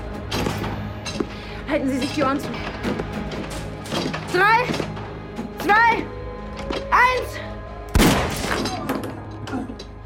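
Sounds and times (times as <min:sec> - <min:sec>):
speech: 0:01.7 - 0:05.0, 0:05.6 - 0:06.1, 0:06.9 - 0:07.5
gunshot fired through a chipboard door: 0:07.9 - 0:08.9.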